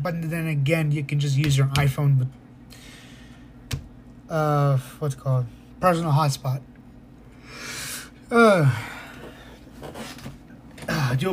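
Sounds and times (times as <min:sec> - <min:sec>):
speech: 0:00.0 - 0:02.8, 0:04.3 - 0:06.7, 0:08.3 - 0:09.0, 0:11.1 - 0:11.3
soft breathing: 0:02.7 - 0:03.6, 0:07.3 - 0:11.1
person yawning: 0:07.6 - 0:09.3.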